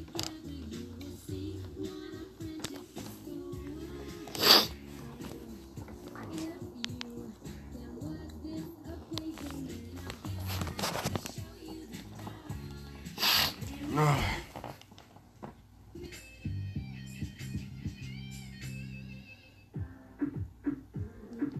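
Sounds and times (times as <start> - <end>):
low music: 0.0 - 14.7, 15.8 - 21.5
person sneezing: 4.3 - 4.8, 13.2 - 14.5.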